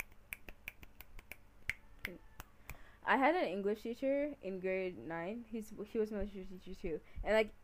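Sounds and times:
finger snapping: 0.0 - 2.9
speech: 2.1 - 2.3, 3.0 - 7.6.

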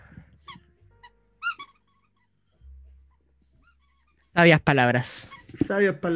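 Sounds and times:
short high-pitched squeaks of a squeaky toy: 0.4 - 2.3, 3.6 - 4.4, 5.1 - 5.7
dog chewing a squeaky toy rabbit: 0.4 - 4.4, 5.1 - 5.7
speech: 4.4 - 6.1.

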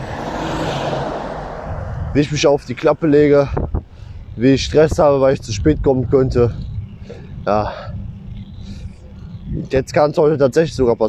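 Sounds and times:
heavy truck passing by on the road: 0.0 - 3.0
speech: 2.1 - 3.8, 4.4 - 8.0, 9.5 - 11.0.

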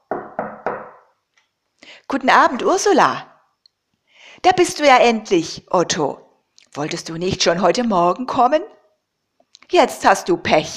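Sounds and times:
heavy resonant knocks on a heavy wooden gate: 0.0 - 1.1
speech: 2.1 - 3.3, 4.4 - 8.7, 9.7 - 10.7.

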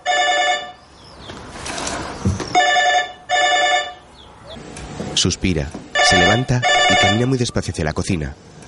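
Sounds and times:
electronic telephone ringing: 0.0 - 0.8, 2.6 - 4.0, 6.0 - 7.4
speech: 5.2 - 8.6.

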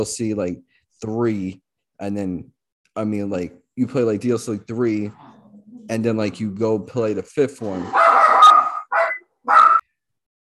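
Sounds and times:
speech: 0.0 - 5.2, 5.9 - 8.0
dog barking: 7.9 - 9.8.

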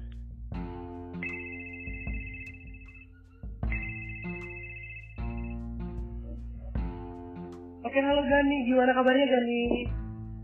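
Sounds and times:
outgoing phone call electronic ringing tone: 1.3 - 3.0, 3.8 - 5.5
speech: 7.9 - 10.0.

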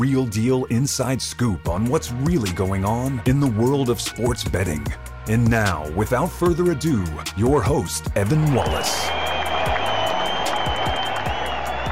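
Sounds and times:
speech: 0.0 - 9.2
crowd cheering and applauding: 8.4 - 11.8.

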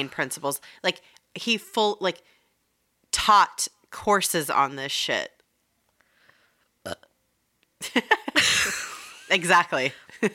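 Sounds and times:
speech: 0.0 - 2.4, 3.2 - 5.4, 6.8 - 7.1, 7.8 - 10.3
burp: 6.8 - 7.2.

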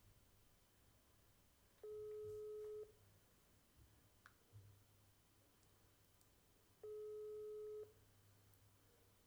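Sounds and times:
WhatsApp outgoing call ringing tone electronic beeps: 1.8 - 2.9, 6.8 - 7.9.

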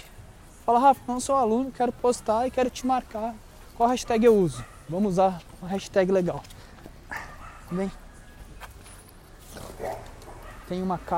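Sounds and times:
speech: 0.7 - 6.6, 7.7 - 8.0, 10.7 - 11.1
dog barking behind the gate of a house: 4.0 - 5.0, 7.1 - 8.0, 9.7 - 10.8.

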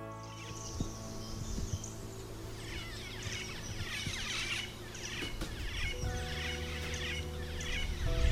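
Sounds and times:
low steady hum: 0.0 - 8.3
black-faced cuckoo shrike calling outdoors: 0.2 - 8.3.

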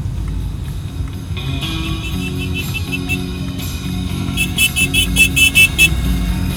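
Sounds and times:
low rumble of idling engines and traffic leaving Guarulhos airport in Brazil: 0.0 - 6.5
car horn honking in short toots: 1.6 - 6.5.

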